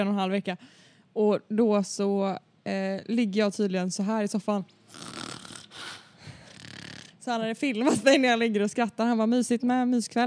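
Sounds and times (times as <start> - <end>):
speech: 0.0 - 5.2, 7.2 - 10.2
person imitating loud snoring: 4.9 - 7.2.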